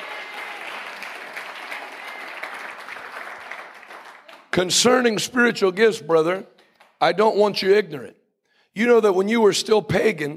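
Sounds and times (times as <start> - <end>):
crowd of many hands applauding: 0.0 - 5.0, 6.4 - 7.1
speech: 4.6 - 8.2, 8.8 - 10.3.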